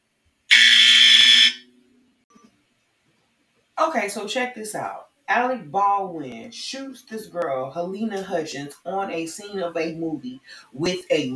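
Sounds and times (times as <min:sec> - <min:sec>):
loud harsh electric buzzer blaring: 0:00.5 - 0:01.6
speech: 0:03.8 - 0:11.3.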